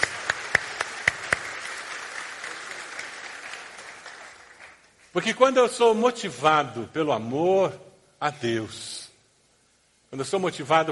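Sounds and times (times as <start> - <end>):
audience applauding: 0.0 - 5.1
speech: 5.2 - 9.0, 10.1 - 10.8.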